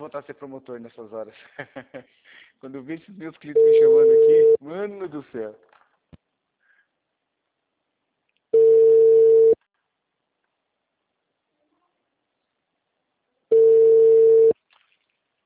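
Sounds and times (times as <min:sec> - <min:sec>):
speech: 0:00.0 - 0:05.7
telephone ringback tone on a call going to voicemail: 0:03.6 - 0:04.6, 0:08.6 - 0:09.6, 0:13.5 - 0:14.6.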